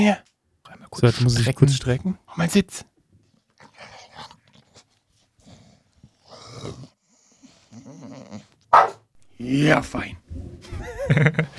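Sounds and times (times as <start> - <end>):
speech: 0.0 - 0.3, 0.9 - 2.9, 8.1 - 11.5
dog giving low grumbling vocal sounds: 5.5 - 11.5
dog giving a sharp loud bark: 8.7 - 9.4
laughter: 9.2 - 11.5.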